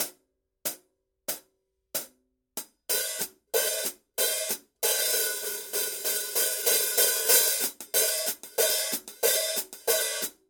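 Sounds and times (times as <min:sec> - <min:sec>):
Paiste PST 3 13-inch hi-hat cymbals: 0:02.9 - 0:10.4.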